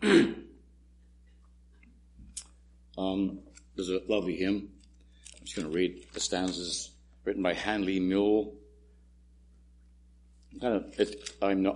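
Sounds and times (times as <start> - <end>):
person with a cold clearing throat: 0.0 - 0.6
speech: 3.0 - 4.8, 5.4 - 8.6, 10.5 - 11.7.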